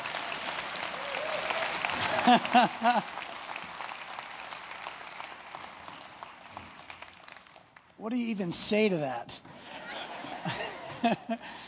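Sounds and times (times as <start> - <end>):
crowd applauding: 0.0 - 8.0
whoops and cheers: 0.1 - 3.0
laughter: 1.9 - 3.3, 9.5 - 11.6
speech: 2.3 - 3.2, 8.0 - 9.5, 10.4 - 11.6.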